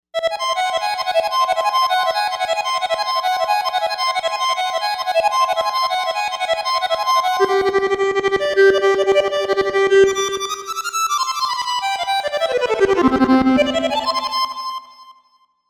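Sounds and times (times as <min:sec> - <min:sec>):
vocal harmonica synth on a Novation UltraNova: 0:00.2 - 0:14.8.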